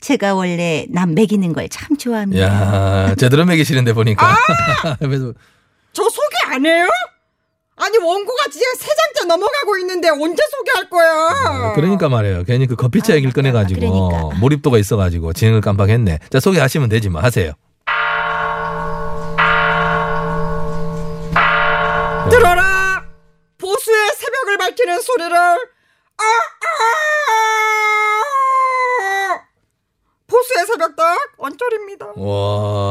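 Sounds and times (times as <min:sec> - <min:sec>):
speech: 0:00.0 - 0:07.2, 0:07.8 - 0:17.7, 0:24.5 - 0:29.2, 0:30.3 - 0:32.9
laughter: 0:02.4 - 0:05.3, 0:11.3 - 0:12.2, 0:12.8 - 0:14.6
large bell tolling: 0:17.9 - 0:23.3.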